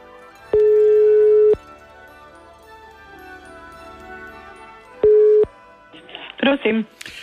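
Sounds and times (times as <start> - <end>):
telephone ringback tone while calling: 0.5 - 1.6, 5.0 - 5.5
speech: 6.5 - 7.2.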